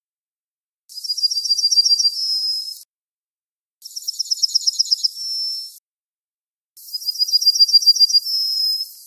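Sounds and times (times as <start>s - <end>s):
bird singing a high rapid trill ending in a thin whistle: 0.9s - 2.9s, 3.8s - 5.8s, 6.8s - 9.0s.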